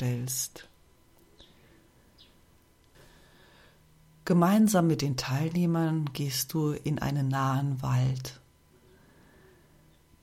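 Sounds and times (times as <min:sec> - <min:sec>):
speech: 0:00.0 - 0:00.7, 0:04.3 - 0:08.4
faint bird chirps at dusk: 0:00.6 - 0:02.5, 0:08.8 - 0:10.2.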